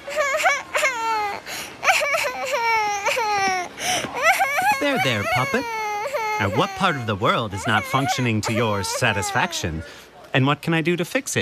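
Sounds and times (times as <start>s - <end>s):
toddler girl crying outside a university building on graduation day: 0.0s - 9.9s
speech: 5.0s - 5.8s, 6.4s - 11.4s.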